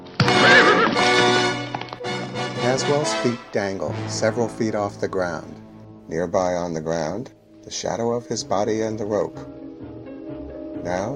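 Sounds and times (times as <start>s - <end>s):
horse hooves clip-clopping: 0.0s - 2.4s
horse neighing: 0.2s - 1.6s
speech: 2.7s - 9.6s, 10.8s - 11.1s.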